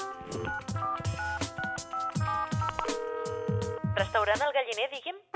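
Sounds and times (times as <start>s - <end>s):
phone keypad tones dialing a number: 0.2s - 4.1s
speech: 0.3s - 0.9s, 4.0s - 5.2s.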